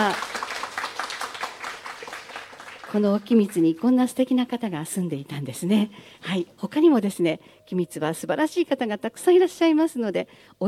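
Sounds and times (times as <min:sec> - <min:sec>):
audience applause after a musical performance: 0:00.0 - 0:03.6
speech: 0:02.9 - 0:10.6.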